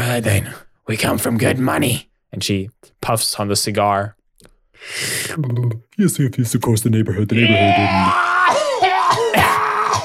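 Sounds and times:
speech: 0:00.1 - 0:04.2, 0:04.8 - 0:08.6
voice imitating a harsh screeching cough: 0:08.3 - 0:10.0.

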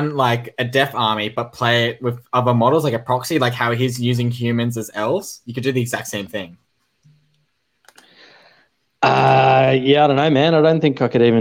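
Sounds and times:
speech: 0:00.0 - 0:06.6, 0:09.0 - 0:11.3
computer mouse clicks: 0:07.0 - 0:08.1.

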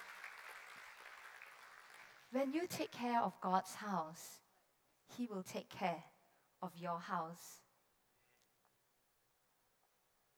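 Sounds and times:
congregation clapping together in applause: 0:00.0 - 0:02.7
speech: 0:02.3 - 0:04.4, 0:05.1 - 0:07.6.

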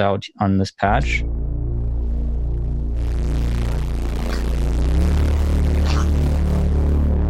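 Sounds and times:
speech: 0:00.0 - 0:01.3
sustained synth patch tone with deep low end: 0:01.0 - 0:07.2.

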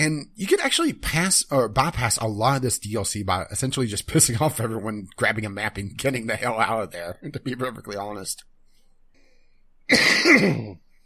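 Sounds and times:
speech: 0:00.0 - 0:08.5, 0:09.9 - 0:10.8
harsh raspy hacking cough: 0:09.9 - 0:10.9.

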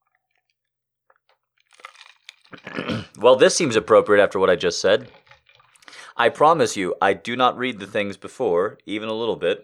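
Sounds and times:
person sipping water: 0:01.2 - 0:03.3, 0:05.0 - 0:06.2
person gulping water: 0:01.8 - 0:03.4, 0:05.0 - 0:06.2
speech: 0:02.5 - 0:05.2, 0:06.2 - 0:09.6.

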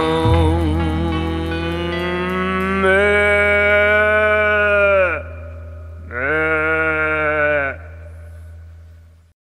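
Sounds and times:
steady low drone: 0:00.0 - 0:09.3
cow mooing: 0:06.1 - 0:08.0.

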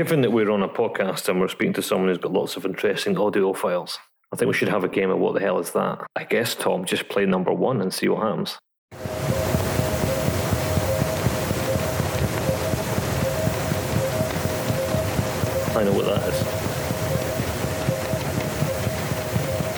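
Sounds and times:
speech: 0:00.0 - 0:09.3, 0:15.8 - 0:16.6
ship's engine rumble with tonal hum recorded underwater: 0:09.0 - 0:19.7.

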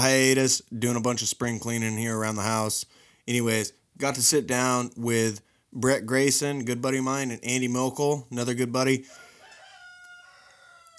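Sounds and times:
speech: 0:00.0 - 0:09.2
faint rooster crowing: 0:09.0 - 0:10.9.

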